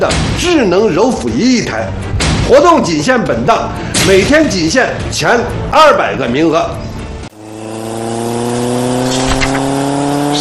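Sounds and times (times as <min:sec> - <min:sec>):
speech: 0:00.0 - 0:06.9
motorcycle engine revving: 0:07.1 - 0:10.3.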